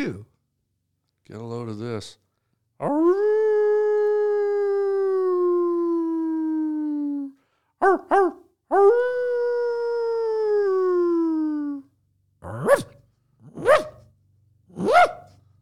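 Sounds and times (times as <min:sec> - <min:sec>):
speech: 0:00.0 - 0:00.3, 0:01.3 - 0:02.2, 0:02.8 - 0:03.5, 0:07.8 - 0:09.2, 0:12.6 - 0:13.9
dog howling: 0:02.8 - 0:11.8, 0:12.4 - 0:12.9, 0:13.5 - 0:14.0, 0:14.8 - 0:15.3
sharp rising bark-like cries: 0:07.8 - 0:08.4, 0:12.4 - 0:14.0, 0:14.7 - 0:15.4
dog yelping: 0:07.8 - 0:08.9, 0:12.4 - 0:14.0, 0:14.8 - 0:15.3.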